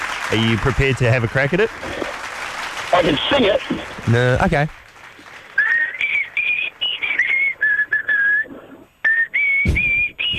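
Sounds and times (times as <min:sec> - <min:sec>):
speech: 0:00.3 - 0:02.2, 0:03.0 - 0:04.8
man whistling a slow lilting folk melody: 0:05.6 - 0:10.3.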